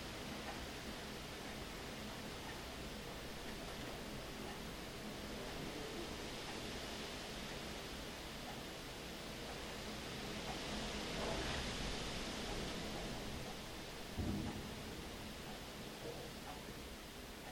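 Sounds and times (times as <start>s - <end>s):
rain hissing in a storm: 0.0s - 17.5s
low rumble of thunder: 12.9s - 16.3s.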